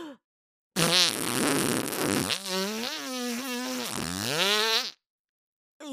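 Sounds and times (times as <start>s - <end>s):
long fart: 0.8s - 5.0s.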